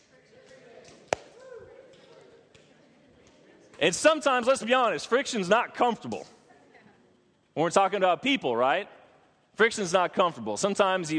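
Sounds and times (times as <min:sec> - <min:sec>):
murmur of many people chatting: 0:00.0 - 0:07.6
high-five hand slap between audience members: 0:01.1 - 0:01.4
speech: 0:03.8 - 0:06.4, 0:07.6 - 0:09.0, 0:09.6 - 0:11.1.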